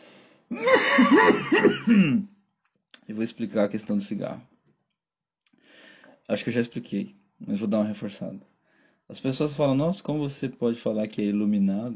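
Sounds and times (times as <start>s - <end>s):
speech: 0.5s - 2.3s, 3.1s - 4.5s, 6.3s - 8.5s, 9.1s - 11.9s
person hearty raspy coughing: 0.5s - 2.4s.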